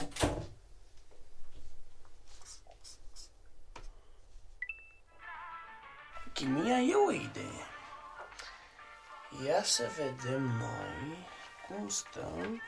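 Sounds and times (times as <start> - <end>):
door shutting with a close thud: 0.0 - 0.6
speech: 6.4 - 7.7, 9.3 - 12.6.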